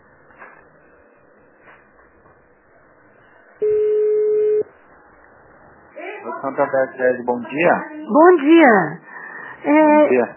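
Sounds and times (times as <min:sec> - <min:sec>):
telephone dialing tone beep: 0:03.6 - 0:04.7
speech: 0:06.4 - 0:09.0, 0:09.6 - 0:10.3.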